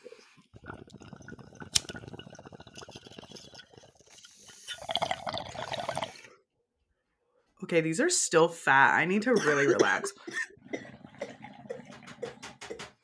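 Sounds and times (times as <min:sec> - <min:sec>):
water bubbling in a bong: 0:00.4 - 0:06.3, 0:09.7 - 0:12.8
speech: 0:07.7 - 0:10.5.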